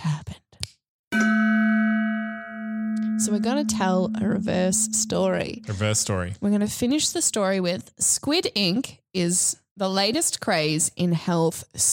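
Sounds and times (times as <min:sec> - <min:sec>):
gong struck and ringing: 0:01.2 - 0:05.8
speech: 0:03.3 - 0:11.9.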